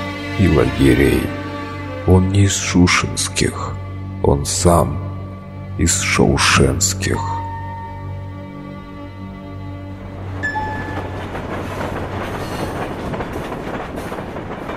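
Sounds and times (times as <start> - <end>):
train rumbling and clattering on rails: 0.0 - 14.7
speech: 0.4 - 1.4, 2.0 - 5.1, 5.8 - 7.4
train high squeal: 10.4 - 11.4.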